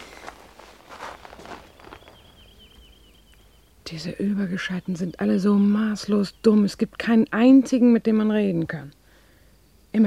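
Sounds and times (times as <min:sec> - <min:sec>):
footsteps of a man walking into a house: 0:00.0 - 0:03.5
faint rustling: 0:00.0 - 0:04.0
speech: 0:03.9 - 0:09.0.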